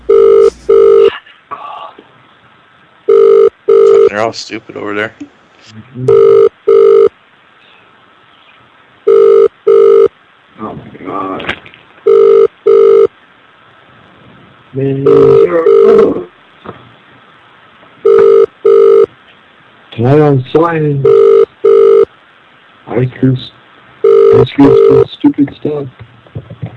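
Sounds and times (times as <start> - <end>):
telephone ringing in a double-ring pattern: 0.1 - 1.1, 3.1 - 4.1, 6.1 - 7.1, 9.1 - 10.1, 12.1 - 13.1, 15.1 - 16.0, 18.0 - 19.1, 21.0 - 22.1, 24.0 - 25.0
speech: 4.2 - 6.5, 14.8 - 16.2, 20.0 - 21.3, 23.0 - 23.5, 24.4 - 26.0.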